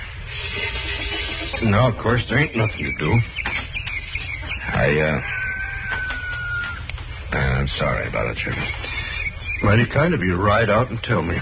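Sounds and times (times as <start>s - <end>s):
low hum: 0.0s - 11.4s
hens clucking in a farmyard: 0.3s - 11.4s
hen squawking in a farmyard: 1.2s - 6.9s, 8.2s - 11.4s
speech: 1.6s - 3.5s, 4.8s - 5.3s, 7.6s - 8.8s, 9.6s - 11.4s.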